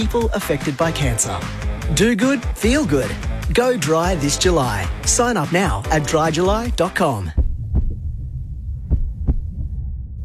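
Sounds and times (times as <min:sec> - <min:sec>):
speech: 0:00.0 - 0:07.4
bus driver's fast heartbeat: 0:07.3 - 0:10.2
low throbbing hum: 0:07.4 - 0:10.2.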